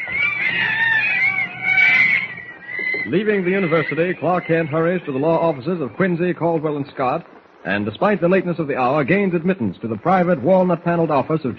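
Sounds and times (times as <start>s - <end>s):
monkeys chattering and screeching: 0.0s - 6.5s
speech: 3.1s - 11.5s.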